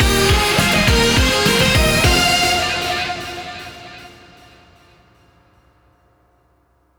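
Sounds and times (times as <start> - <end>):
free spin win jingle: 0.0 - 3.8.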